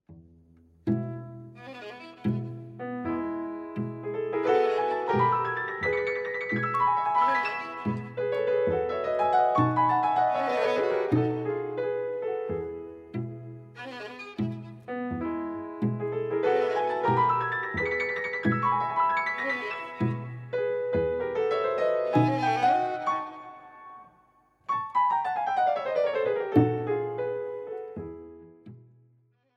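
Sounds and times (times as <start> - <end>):
classical trio for violin cello and piano: 0.8 - 24.0, 24.8 - 28.8.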